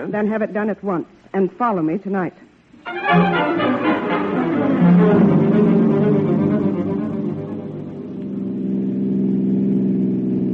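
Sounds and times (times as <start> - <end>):
speech: 0.0 - 4.3
car engine running while driving: 4.2 - 10.5.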